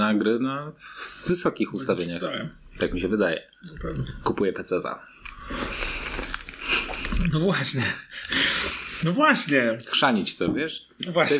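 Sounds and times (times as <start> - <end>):
speech: 0.1 - 5.8, 7.2 - 11.3
crunching and chewing of peanuts: 5.2 - 9.0.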